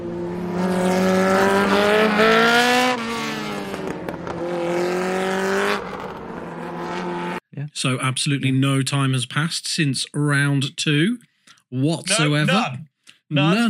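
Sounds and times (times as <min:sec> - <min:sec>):
racing car engines revving as a sound effect: 0:00.0 - 0:07.4
speech: 0:07.8 - 0:13.6.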